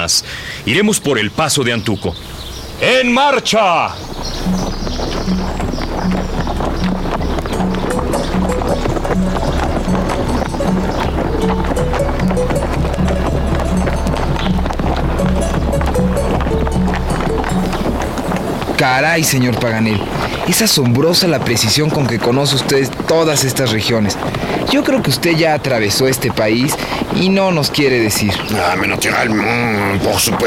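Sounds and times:
speech: 0.0 - 5.6, 18.8 - 30.4
horses' hooves clip-clopping on a trail: 2.2 - 30.4
constant low rumble: 4.1 - 20.4.

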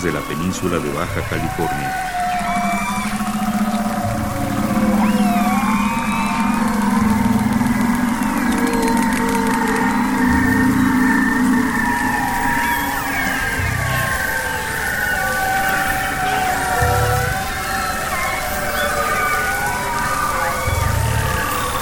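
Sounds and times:
speech: 0.0 - 2.6
whale calls: 0.0 - 21.8
steady low hum: 1.1 - 15.0, 16.2 - 17.7.

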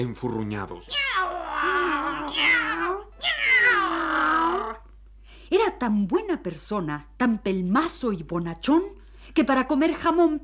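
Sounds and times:
speech: 0.0 - 4.0, 5.5 - 10.4
cat meowing with wavering pitch: 0.8 - 4.9.

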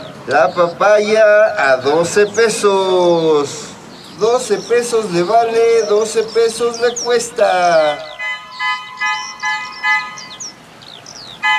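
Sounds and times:
speech: 0.2 - 8.1
bread vendor's bicycle horn honking: 8.1 - 10.4.

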